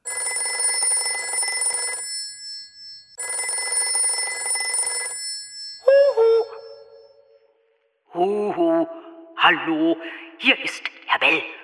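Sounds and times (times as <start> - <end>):
telephone bell ringing with a metallic rattle: 0.0 - 7.2
speech: 8.2 - 11.6.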